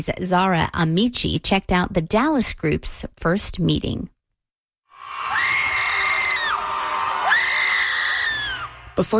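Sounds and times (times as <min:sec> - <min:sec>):
speech: 0:00.0 - 0:04.1, 0:09.0 - 0:09.1
large crowd of people screaming outdoors in a park: 0:04.9 - 0:09.0.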